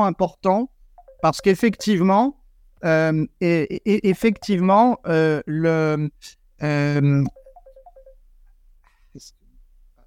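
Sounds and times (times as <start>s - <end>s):
speech: 0.0s - 7.4s, 9.2s - 9.4s
phone ringtone of short bright electronic beeps: 1.0s - 2.3s, 4.1s - 4.8s, 7.3s - 8.2s.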